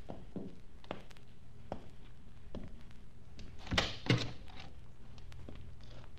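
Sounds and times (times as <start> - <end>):
soft footsteps: 0.0 - 3.6, 4.3 - 6.1
door opening and closing: 3.6 - 4.5.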